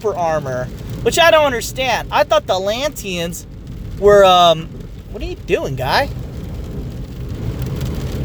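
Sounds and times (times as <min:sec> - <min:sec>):
speech: 0:00.0 - 0:06.2
deep road rumble of a moving car: 0:00.0 - 0:08.2
steady rain pattering on a moving car heard from inside: 0:00.0 - 0:08.2.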